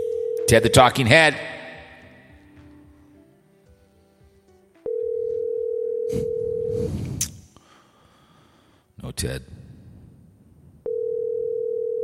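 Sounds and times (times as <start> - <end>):
telephone dial tone while placing a call: 0.0 - 0.6, 4.9 - 6.7, 10.9 - 12.0
speech: 0.5 - 1.5, 6.1 - 7.0, 9.1 - 9.6.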